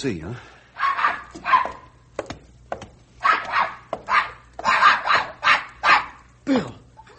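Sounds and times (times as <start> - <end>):
speech: 0.0 - 0.6, 6.5 - 6.8
dog barking while playing with people: 0.8 - 1.9, 3.2 - 6.3.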